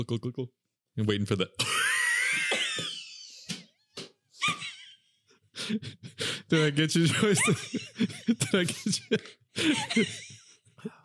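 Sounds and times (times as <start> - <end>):
speech: 0.0 - 1.8, 5.7 - 11.0
person performing an exaggerated raspy cough: 1.7 - 3.0
laughter: 6.6 - 10.7.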